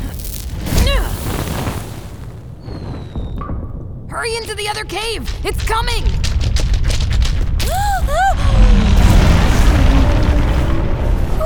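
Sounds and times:
fireball roaring boom rumbling down a mine tunnel: 0.4s - 11.4s
speech: 4.2s - 6.2s.

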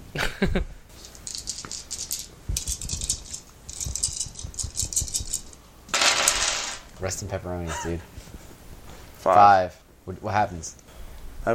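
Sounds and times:
speech: 0.1s - 0.8s, 7.0s - 8.2s, 9.2s - 10.8s
handful of dice clattering across a hard tabletop: 1.2s - 6.9s.

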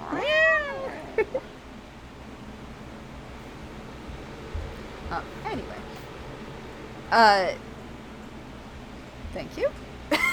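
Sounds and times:
male cat yowling at kittens: 0.0s - 1.4s
speech: 7.1s - 7.7s, 9.4s - 10.2s
laughter: 10.1s - 10.3s.

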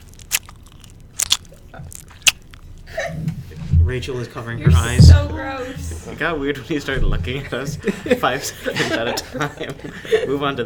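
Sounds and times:
gum being chewed with wet clicks and smacks: 0.0s - 2.8s
speech: 3.1s - 10.6s
laughter: 7.4s - 10.6s.

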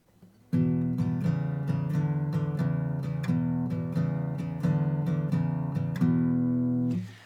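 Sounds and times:
acoustic guitar playing a basic blues shuffle on low strings: 0.0s - 7.2s.

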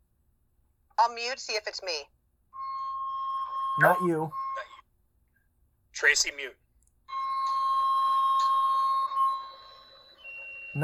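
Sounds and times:
speech: 1.0s - 2.2s, 3.8s - 4.7s, 6.0s - 6.6s
sustained electronic beeping tone with bright harmonics: 2.6s - 4.8s, 7.1s - 10.8s.

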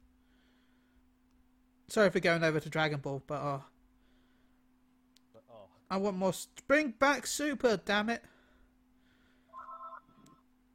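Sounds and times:
speech: 1.9s - 3.7s, 5.9s - 8.3s
telephone ringing with a bright electronic trill: 9.5s - 10.4s.

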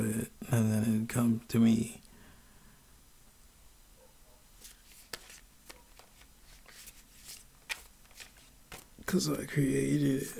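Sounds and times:
speech: 0.0s - 2.0s, 9.1s - 10.3s
faint hiss: 0.0s - 10.3s
tarot cards being shuffled: 4.6s - 9.3s.

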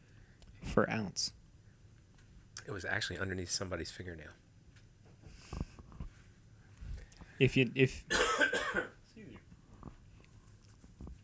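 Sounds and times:
speech: 0.8s - 1.4s, 2.7s - 4.4s, 7.4s - 8.9s
person coughing: 8.1s - 9.0s.

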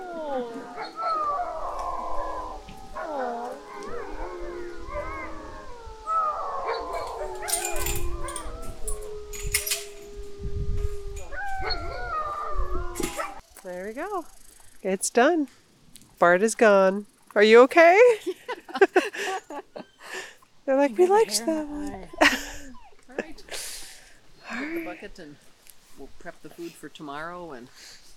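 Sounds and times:
dogs barking sharply: 0.0s - 10.1s, 11.2s - 13.4s, 21.4s - 23.0s
several dogs whining and whimpering: 0.0s - 13.4s, 19.4s - 23.4s
speech: 14.1s - 15.6s, 16.2s - 18.2s, 20.8s - 21.9s, 25.0s - 28.0s
laughter: 18.1s - 20.3s, 21.0s - 23.8s.

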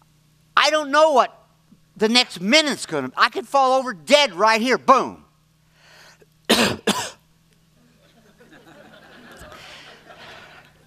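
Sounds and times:
speech: 0.7s - 1.4s, 2.0s - 5.2s, 6.6s - 6.9s
person coughing: 6.5s - 7.2s
laughter: 7.8s - 10.8s.

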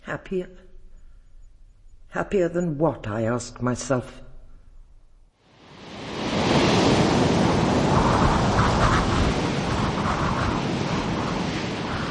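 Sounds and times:
speech: 0.1s - 0.6s, 2.1s - 4.2s
rough sea waves churning: 5.5s - 12.1s
strong wind: 5.6s - 12.1s.

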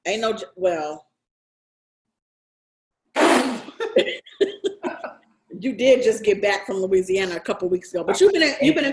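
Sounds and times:
speech: 0.0s - 1.1s, 4.0s - 4.6s, 5.6s - 8.9s
harsh forceful throaty coughing: 3.2s - 5.1s.

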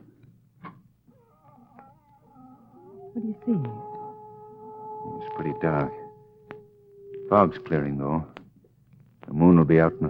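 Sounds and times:
cat howling in a drawn-out wavering cry: 1.1s - 8.3s, 9.3s - 10.0s
speech: 3.2s - 3.9s, 5.4s - 6.0s, 7.3s - 8.4s, 9.3s - 10.0s.

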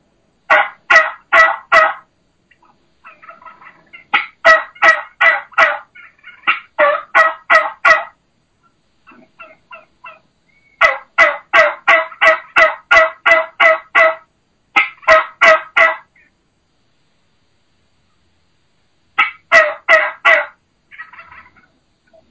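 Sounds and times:
turkey hen call in the low slow style of an old mature boss hen: 0.5s - 16.4s, 19.2s - 22.2s.

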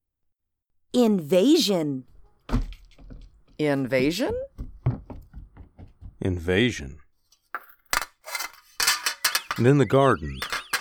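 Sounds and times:
speech: 0.9s - 2.7s, 3.6s - 4.5s, 6.2s - 7.0s, 9.6s - 10.6s
metal pots, pans, wrenches, forks and spoons clattering in a garden: 7.5s - 10.7s.

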